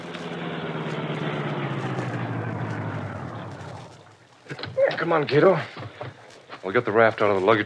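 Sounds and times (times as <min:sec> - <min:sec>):
car engine rumbling while rolling slowly toward the shore: 0:00.0 - 0:04.8
broad wash of car road noise: 0:00.0 - 0:07.6
speech: 0:05.0 - 0:05.8, 0:06.6 - 0:07.6.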